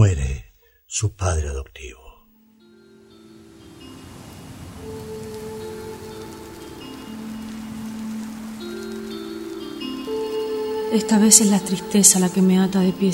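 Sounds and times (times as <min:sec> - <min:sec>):
speech: 0:00.9 - 0:02.1, 0:10.9 - 0:13.1
soft sustained musical tones: 0:02.5 - 0:13.1
steady rain patter: 0:03.4 - 0:13.1.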